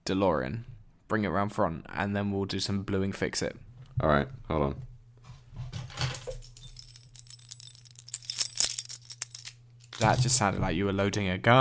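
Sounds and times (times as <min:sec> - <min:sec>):
speech: 0:00.0 - 0:04.9, 0:10.0 - 0:11.5
house keys jangling: 0:06.1 - 0:10.2.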